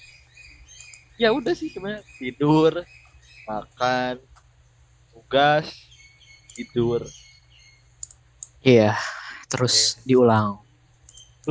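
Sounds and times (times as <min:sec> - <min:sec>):
bird chirping: 0:00.0 - 0:04.2, 0:05.3 - 0:07.9, 0:10.0 - 0:11.4
low hum: 0:00.0 - 0:11.4
speech: 0:01.2 - 0:04.3, 0:05.2 - 0:05.8, 0:06.6 - 0:07.2, 0:08.6 - 0:10.6.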